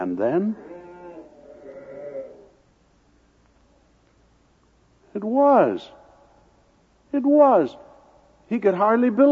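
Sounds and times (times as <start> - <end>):
speech: 0.0 - 0.7, 5.2 - 6.0, 7.1 - 7.8, 8.5 - 9.3
sheep bleating: 0.6 - 2.6.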